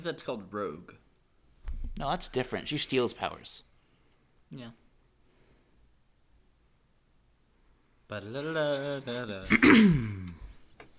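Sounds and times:
speech: 0:00.0 - 0:01.0, 0:02.0 - 0:03.7, 0:04.5 - 0:04.8, 0:08.1 - 0:10.2
person clearing throat: 0:09.5 - 0:10.6.

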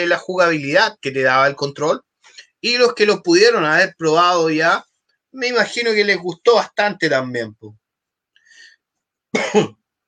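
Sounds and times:
speech: 0:00.0 - 0:07.8, 0:09.3 - 0:09.8
person coughing: 0:09.3 - 0:09.8.

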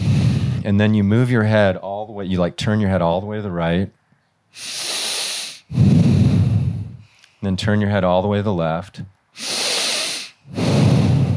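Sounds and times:
breathing in through the nose: 0:00.0 - 0:00.7, 0:04.5 - 0:07.4, 0:09.4 - 0:11.3
speech: 0:00.6 - 0:04.9, 0:07.4 - 0:09.6.

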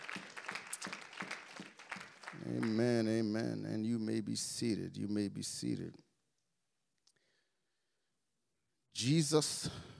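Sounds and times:
church congregation clapping hands in praise during a service: 0:00.0 - 0:03.4
speech: 0:02.5 - 0:06.0, 0:09.0 - 0:09.9.

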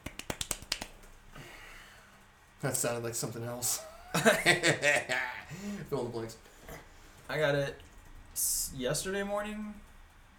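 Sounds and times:
quiet golf clap: 0:00.0 - 0:01.1
speech: 0:02.6 - 0:06.5, 0:07.3 - 0:07.8, 0:08.4 - 0:09.8
laughter: 0:03.8 - 0:05.6.

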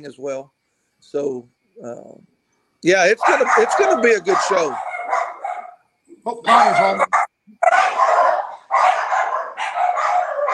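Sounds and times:
speech: 0:00.0 - 0:04.9, 0:06.2 - 0:07.7
several dogs barking: 0:03.1 - 0:05.8, 0:06.8 - 0:10.5.

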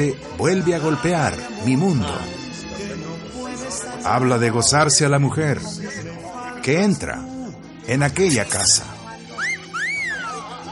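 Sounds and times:
speech: 0:00.0 - 0:02.4, 0:04.0 - 0:06.0, 0:06.6 - 0:07.3, 0:07.9 - 0:08.9
man giving a two-part wolf whistle: 0:09.4 - 0:10.5.

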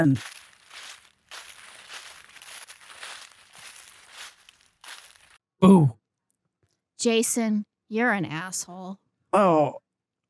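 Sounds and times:
speech: 0:00.0 - 0:00.4, 0:05.6 - 0:06.0, 0:07.0 - 0:09.8
footsteps crunching on dry leaves or gravel: 0:00.0 - 0:05.4.

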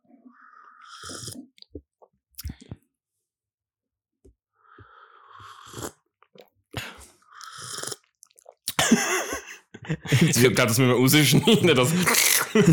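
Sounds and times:
slurping a hot drink from a cup: 0:00.1 - 0:02.8, 0:04.6 - 0:08.7, 0:11.9 - 0:12.6
laughter: 0:08.8 - 0:12.7
speech: 0:10.2 - 0:12.7.

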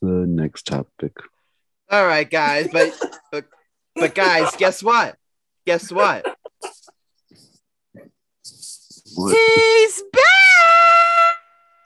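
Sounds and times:
speech: 0:00.4 - 0:01.3, 0:01.9 - 0:06.3, 0:08.0 - 0:10.4
excited high-pitched human scream: 0:10.1 - 0:11.6.

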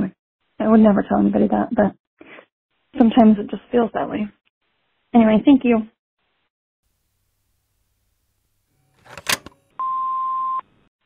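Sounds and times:
speech: 0:00.7 - 0:02.0, 0:02.9 - 0:04.4, 0:05.1 - 0:05.9
brief clatter of clicks: 0:09.0 - 0:09.6.

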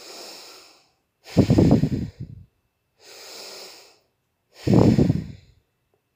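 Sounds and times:
slow breathing through the nose during a guided meditation: 0:00.0 - 0:05.6.

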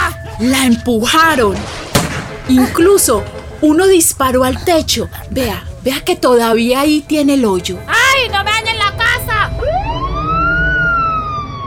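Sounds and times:
speech: 0:00.4 - 0:01.8, 0:02.5 - 0:08.4
police patrol car siren wailing: 0:08.7 - 0:11.6.

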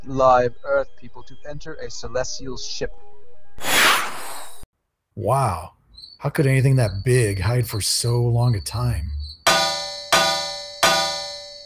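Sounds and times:
speech: 0:00.1 - 0:04.1, 0:05.2 - 0:09.2
large metal hull ringing when struck: 0:09.5 - 0:11.6.

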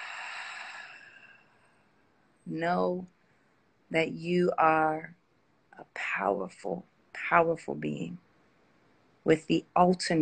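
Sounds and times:
long exhale of a deep breath during a guided meditation: 0:00.0 - 0:01.6
speech: 0:02.5 - 0:03.2, 0:03.9 - 0:05.2, 0:05.8 - 0:08.2, 0:09.2 - 0:10.2.

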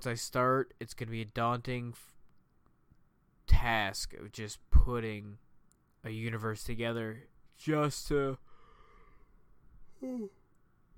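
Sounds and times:
speech: 0:00.0 - 0:02.2, 0:03.5 - 0:05.4, 0:06.0 - 0:08.5, 0:10.0 - 0:10.4
person yawning: 0:09.9 - 0:10.4.

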